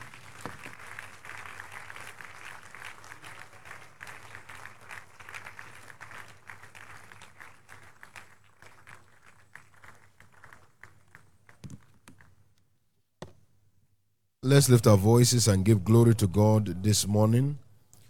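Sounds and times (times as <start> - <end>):
crowd applauding in a room: 0.0 - 11.1
speech: 14.5 - 17.6.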